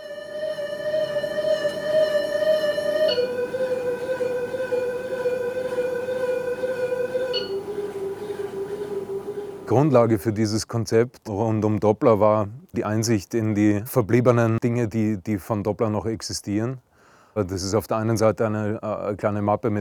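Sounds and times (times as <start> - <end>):
sustained train horn with a harmonic tone passing: 0.0 - 9.6
speech: 9.7 - 19.7.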